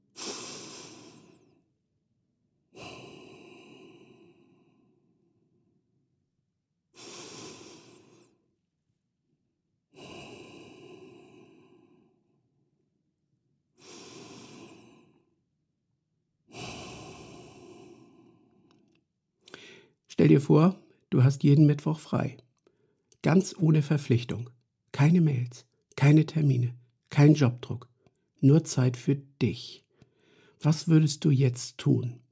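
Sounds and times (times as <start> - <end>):
deep slow breathing in and out: 0.0 - 1.8, 2.7 - 5.9, 6.9 - 8.6, 9.9 - 12.6, 13.7 - 15.5, 16.4 - 20.1, 29.8 - 30.6
speech: 20.2 - 22.4, 23.2 - 29.8, 30.6 - 32.2.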